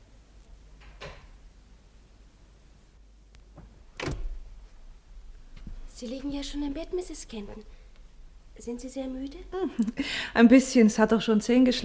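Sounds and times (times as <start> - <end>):
faint low hum: 0.0 - 11.8
door being opened: 4.0 - 4.4
speech: 6.0 - 7.8, 8.6 - 11.8.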